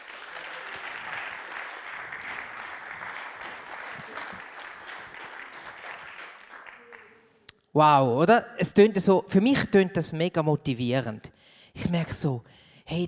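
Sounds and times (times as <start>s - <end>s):
audience applause: 0.0s - 7.3s
speech: 7.8s - 13.0s.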